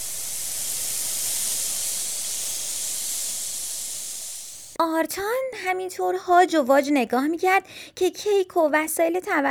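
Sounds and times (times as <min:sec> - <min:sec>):
steam rushing and sizzling: 0:00.0 - 0:04.8
water spraying onto flames: 0:00.0 - 0:04.8
speech: 0:04.8 - 0:09.4.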